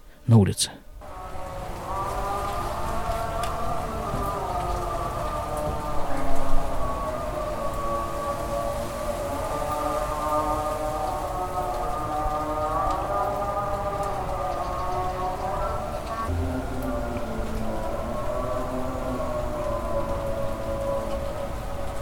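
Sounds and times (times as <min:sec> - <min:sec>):
Muslim call to prayer heard from the street outdoors in Israel after dark: 0:00.0 - 0:21.9
speech: 0:00.3 - 0:00.8.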